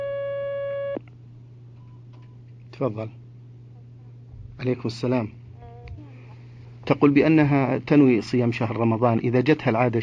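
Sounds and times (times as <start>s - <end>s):
telephone line tone as a caller is connected: 0.0s - 1.0s
low steady hum: 0.0s - 10.0s
speech: 2.8s - 3.2s, 4.6s - 5.4s, 6.9s - 10.0s.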